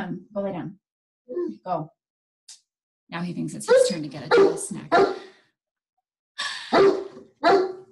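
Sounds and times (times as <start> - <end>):
speech: 1.6 - 5.3
dog barking: 3.7 - 5.3, 6.7 - 7.9.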